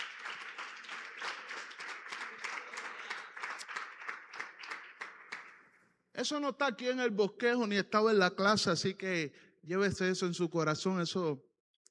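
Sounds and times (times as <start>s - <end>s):
audience applauding: 0.0s - 5.7s
speech: 6.2s - 11.5s.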